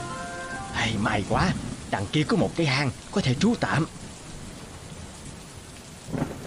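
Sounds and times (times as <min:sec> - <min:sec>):
steady rain: 0:00.0 - 0:06.4
speech: 0:00.8 - 0:04.0
low thunder rumble: 0:01.0 - 0:05.2, 0:06.0 - 0:06.4.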